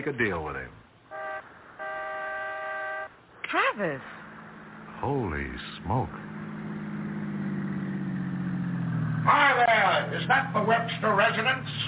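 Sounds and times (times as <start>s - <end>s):
speech: 0.0s - 0.8s, 3.5s - 4.2s, 5.0s - 6.3s, 9.2s - 11.8s
car engine humming as the car pulls up to front steps: 0.0s - 11.8s.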